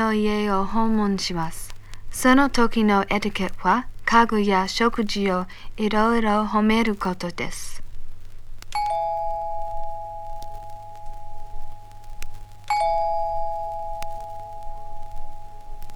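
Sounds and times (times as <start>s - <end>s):
speech: 0.0s - 7.8s
doorbell chiming with long sustained tones: 8.8s - 11.4s, 12.7s - 15.0s.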